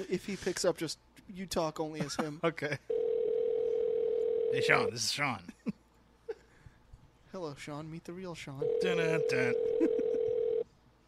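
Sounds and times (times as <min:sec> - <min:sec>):
speech: 0:00.0 - 0:02.9, 0:04.5 - 0:05.8, 0:07.3 - 0:10.0
steady electronic phone ringback tone: 0:02.9 - 0:04.9, 0:08.6 - 0:10.6.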